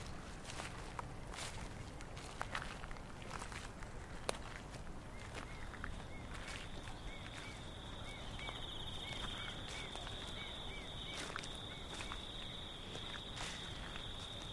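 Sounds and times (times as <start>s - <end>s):
several people's soft crunching footsteps walking outdoors at night: 0.0s - 14.5s
steady hiss: 0.0s - 14.5s
faint high chirps: 5.5s - 14.5s.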